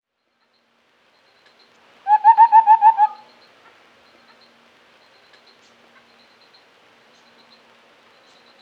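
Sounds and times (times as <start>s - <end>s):
white-browed scimitar babbler hollow fluty hooting notes: 2.1s - 3.2s.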